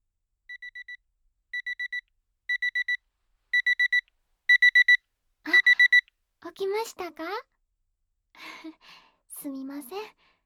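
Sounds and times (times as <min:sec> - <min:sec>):
digital alarm clock beeping: 0:01.6 - 0:03.0, 0:03.6 - 0:05.0, 0:05.6 - 0:06.0
speech: 0:06.6 - 0:07.5, 0:08.4 - 0:10.2.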